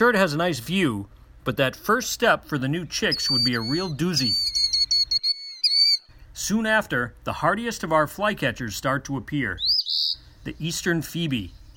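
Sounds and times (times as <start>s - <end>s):
speech: 0.0s - 4.6s, 6.4s - 11.6s
killdeer whistling: 3.0s - 6.1s, 9.6s - 10.8s, 11.5s - 11.7s.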